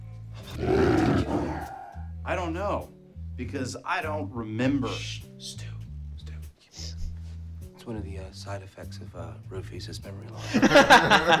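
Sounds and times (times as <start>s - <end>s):
tiger roaring and growling: 0.4s - 2.1s
speech: 0.6s - 0.8s, 2.3s - 5.7s, 7.9s - 11.3s
laughter: 10.4s - 11.3s.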